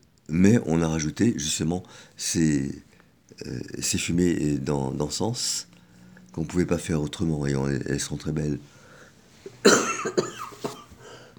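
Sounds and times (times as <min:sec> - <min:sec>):
speech: 0:00.3 - 0:08.8, 0:09.6 - 0:10.4
person coughing: 0:09.4 - 0:11.3.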